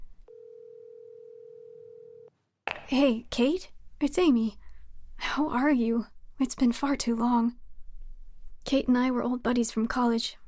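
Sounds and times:
phone call ringing tone from a phone in a parked car: 0:00.3 - 0:02.3
speech: 0:02.9 - 0:04.6, 0:05.2 - 0:07.6, 0:08.7 - 0:10.4.

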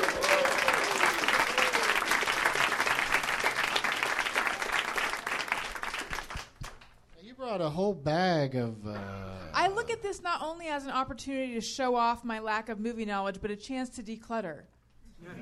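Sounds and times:
crowd clapping: 0:00.0 - 0:07.0
speech: 0:07.8 - 0:15.4.

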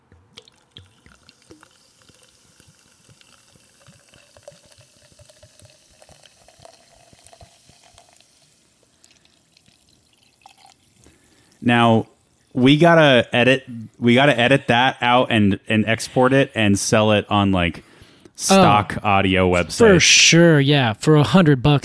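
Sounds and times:
sparkling hop water poured into a glass: 0:00.4 - 0:12.6
speech: 0:11.6 - 0:21.8.

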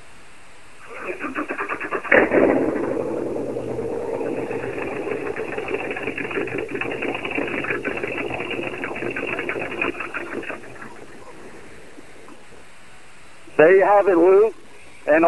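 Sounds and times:
speedboat engine starting up and revving: 0:00.9 - 0:12.8
speech: 0:13.8 - 0:15.2.

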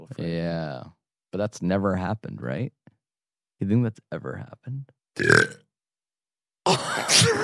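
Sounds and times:
speech: 0:00.1 - 0:02.8, 0:03.6 - 0:05.6
loud deep burp: 0:05.2 - 0:05.6.

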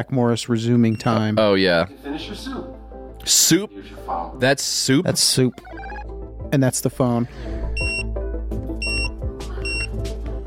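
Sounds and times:
speech: 0:00.0 - 0:07.9
kitchen timer beeper beeping: 0:05.6 - 0:06.1, 0:07.8 - 0:08.1, 0:08.8 - 0:10.0.

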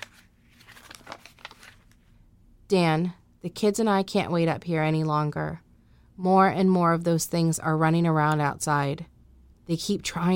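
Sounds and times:
taped paper note pulled off a fireplace: 0:00.0 - 0:02.0
speech: 0:02.7 - 0:05.6, 0:06.2 - 0:09.1, 0:09.7 - 0:10.3.

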